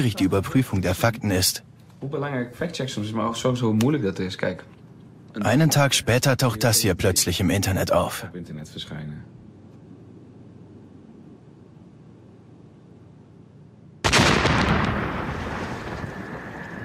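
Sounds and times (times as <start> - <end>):
speech: 0.0 - 4.7, 5.3 - 9.4
car exploding in a video: 14.1 - 16.8.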